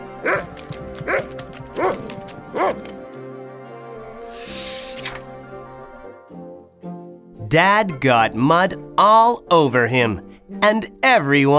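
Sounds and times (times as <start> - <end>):
soft music: 0.0 - 11.5
dog barking during a chase: 0.2 - 2.9
hissing splash: 4.2 - 5.5
speech: 7.5 - 11.5.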